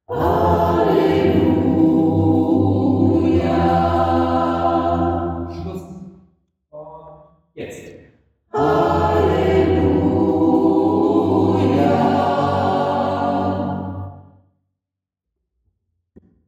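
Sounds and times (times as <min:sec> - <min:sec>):
choir and orchestra tutti: 0:00.1 - 0:05.7, 0:08.6 - 0:14.2.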